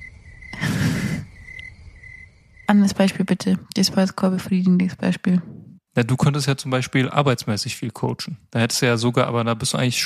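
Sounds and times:
crickets chirping: 0:00.0 - 0:04.3
speech: 0:02.7 - 0:10.0.

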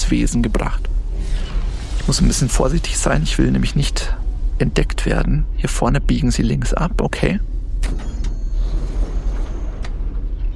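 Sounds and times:
speech: 0:00.1 - 0:01.4, 0:02.1 - 0:08.1
door opening: 0:07.8 - 0:10.5.

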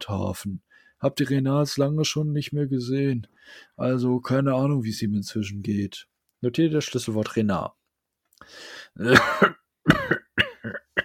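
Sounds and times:
speech: 0:00.0 - 0:07.8, 0:08.4 - 0:10.2
man's raspy intake of breath: 0:08.4 - 0:09.0
man coughing harshly and painfully: 0:09.0 - 0:11.0.

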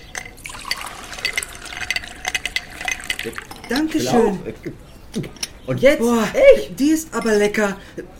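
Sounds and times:
light glassy clinks: 0:00.0 - 0:04.4
homemade lemonade pouring from a jug into a glass: 0:00.2 - 0:04.0
speech: 0:03.2 - 0:08.1.

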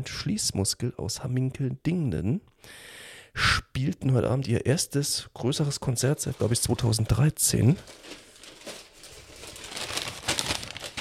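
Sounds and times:
speech: 0:00.0 - 0:08.2
paper bag of fries rustling as fries are fished out: 0:05.6 - 0:11.0.

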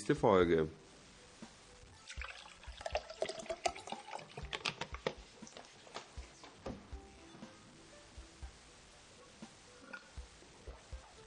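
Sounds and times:
speech: 0:00.1 - 0:00.8
wine poured into a glass: 0:02.0 - 0:04.7.

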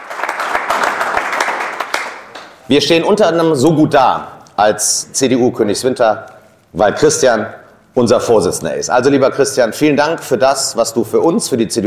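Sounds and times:
audience applause at a local political party meeting: 0:00.0 - 0:02.4
speech: 0:02.7 - 0:11.8.

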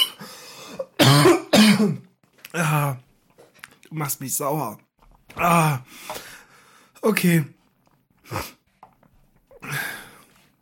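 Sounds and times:
person coughing harshly: 0:00.0 - 0:02.1
speech: 0:01.8 - 0:03.0, 0:03.9 - 0:06.3, 0:07.0 - 0:07.6, 0:08.3 - 0:08.6.

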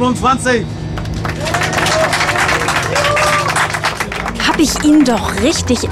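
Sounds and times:
speech: 0:00.0 - 0:00.8, 0:04.5 - 0:05.8
dense steady applause from a crowd: 0:00.9 - 0:05.8
faint whistles and cheers from a crowd: 0:01.2 - 0:04.2.

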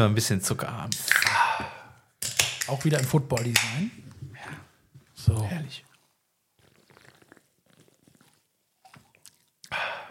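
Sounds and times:
speech: 0:00.0 - 0:01.8, 0:02.7 - 0:04.6, 0:05.2 - 0:05.9
wet slurping and sipping: 0:06.0 - 0:10.0.

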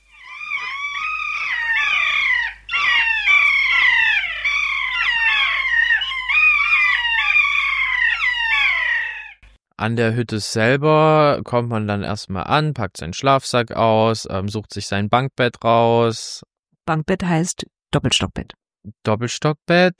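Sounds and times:
kea mountain parrots calling: 0:00.0 - 0:09.5
speech: 0:09.8 - 0:19.9.

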